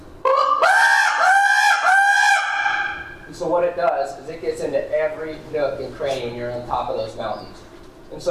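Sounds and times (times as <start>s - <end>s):
raven locator call blown on a goose call with a rolling tongue: 0.2s - 3.3s
speech: 3.5s - 8.2s.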